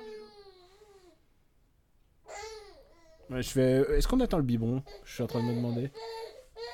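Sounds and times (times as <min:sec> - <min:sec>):
baby crying: 0:00.0 - 0:01.2, 0:02.2 - 0:03.3, 0:04.8 - 0:06.7
speech: 0:03.3 - 0:06.4.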